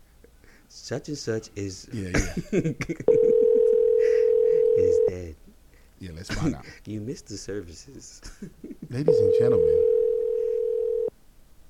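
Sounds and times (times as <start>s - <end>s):
speech: 0.7s - 3.4s, 4.8s - 5.4s, 6.0s - 9.8s
telephone ringback tone on an unanswered outgoing call: 3.1s - 5.2s, 9.1s - 11.1s.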